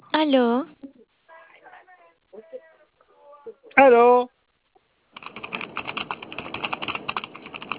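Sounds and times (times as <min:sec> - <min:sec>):
speech: 0:00.2 - 0:00.8, 0:03.8 - 0:04.3
typing on computer keyboards: 0:05.2 - 0:07.7.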